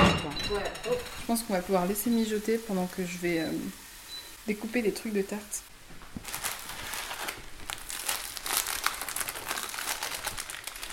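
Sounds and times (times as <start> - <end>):
speech: 0.5 - 3.8, 4.4 - 6.4
baking paper crinkling being pressed onto a tray: 6.0 - 10.9.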